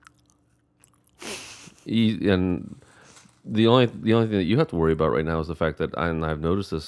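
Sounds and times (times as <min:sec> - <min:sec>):
crunchy chewing of granola: 0:00.0 - 0:02.1, 0:02.7 - 0:03.6
speech: 0:01.8 - 0:02.8, 0:03.4 - 0:06.8.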